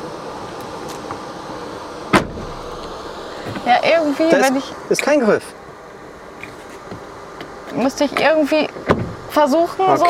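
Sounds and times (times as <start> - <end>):
steady low hum: 0.0 - 10.0
car rear door slamming shut: 2.1 - 3.7, 8.8 - 9.2
speech: 3.5 - 5.6, 7.8 - 10.0.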